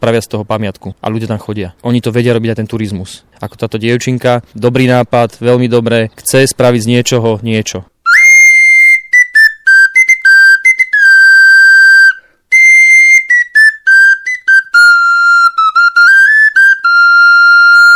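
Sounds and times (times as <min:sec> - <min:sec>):
speech: 0:00.0 - 0:08.0
rag-collector's folk whistle playing a lively melody: 0:08.0 - 0:17.9.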